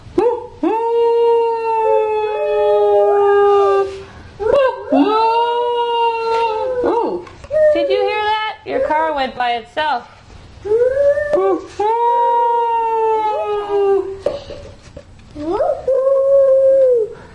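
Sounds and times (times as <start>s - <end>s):
several dogs or wolves howling together: 0.2s - 8.2s, 10.7s - 14.2s, 15.5s - 17.2s
speech: 9.2s - 10.2s.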